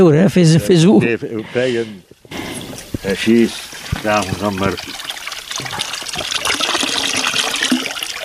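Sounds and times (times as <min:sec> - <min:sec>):
speech: 0:00.0 - 0:02.4, 0:03.0 - 0:05.0, 0:05.6 - 0:06.4
fountain water pouring from a drinking vessel: 0:02.5 - 0:08.2.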